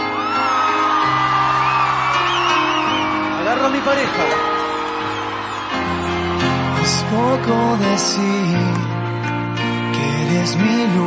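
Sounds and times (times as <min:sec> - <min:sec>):
live concert audience shouting, whooping and cheering: 0:00.0 - 0:08.1
speech: 0:03.8 - 0:04.5, 0:07.1 - 0:09.0, 0:10.3 - 0:11.0.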